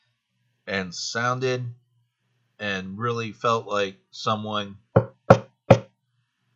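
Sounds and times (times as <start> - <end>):
speech: 0.7 - 1.8, 2.6 - 5.1
firm knocks on a rarely used exit door: 5.0 - 5.9.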